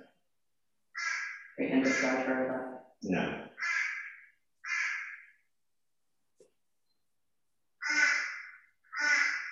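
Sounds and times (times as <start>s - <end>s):
bird calling with harsh raspy caws: 1.0s - 2.2s, 3.6s - 5.5s, 7.8s - 9.5s
speech: 2.0s - 3.5s.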